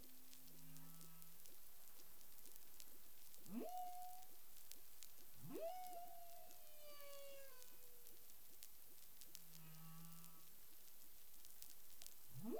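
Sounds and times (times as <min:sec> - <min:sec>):
clicky underwater noise: 0:00.0 - 0:12.5
humpback whale sounds: 0:03.4 - 0:04.6, 0:05.4 - 0:08.2, 0:12.4 - 0:12.5.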